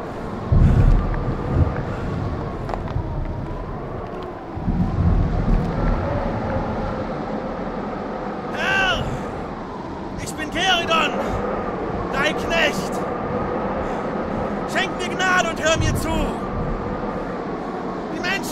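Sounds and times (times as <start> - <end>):
strong storm wind roaring on a high mountain: 0.0 - 18.5.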